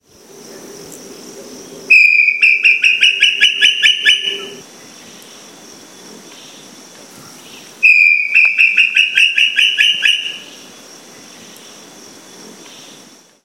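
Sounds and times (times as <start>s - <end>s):
Crypturellus obsoletus calling: 1.9s - 5.4s, 6.3s - 11.7s.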